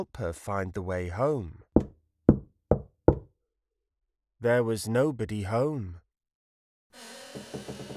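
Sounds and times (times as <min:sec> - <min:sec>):
speech: 0:00.0 - 0:01.6, 0:04.4 - 0:06.0, 0:06.9 - 0:07.4
firm knocking on a wooden door: 0:01.8 - 0:03.3.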